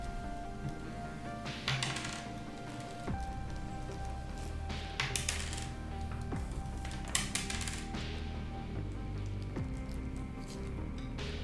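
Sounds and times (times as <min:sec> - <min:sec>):
music: 0:00.0 - 0:11.4
dice rolling on a table for a tabletop game attack: 0:01.6 - 0:03.0, 0:05.0 - 0:05.8, 0:06.8 - 0:08.0.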